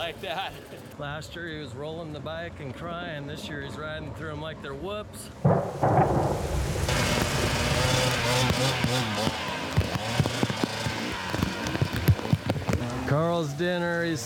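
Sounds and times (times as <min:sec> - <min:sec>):
speech: 0:00.0 - 0:09.4, 0:13.1 - 0:14.2
low rumble of thunder: 0:05.4 - 0:09.0
sharp knocks: 0:05.4 - 0:12.7
heavy rain: 0:05.4 - 0:12.8.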